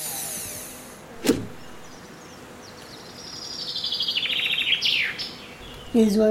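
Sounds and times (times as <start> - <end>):
birds chirping and squabbling at a feeder: 1.4 - 6.2.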